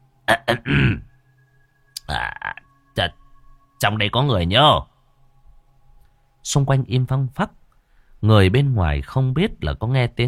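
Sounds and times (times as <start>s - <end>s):
man clearing his throat: 0.3s - 1.1s
speech: 0.5s - 1.1s, 3.0s - 3.2s, 3.8s - 4.9s, 6.4s - 7.6s, 8.2s - 10.2s.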